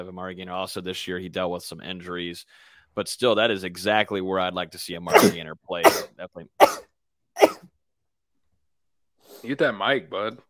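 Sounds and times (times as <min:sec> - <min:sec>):
speech: 0:00.0 - 0:07.5, 0:09.4 - 0:10.4
sneeze: 0:05.1 - 0:06.8, 0:07.4 - 0:07.6.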